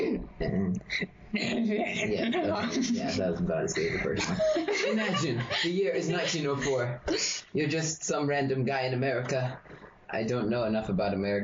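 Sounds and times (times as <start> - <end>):
person clearing throat in short rough voiced bursts: 0.0 - 0.9
speech: 0.4 - 11.4
laughter: 1.4 - 7.0.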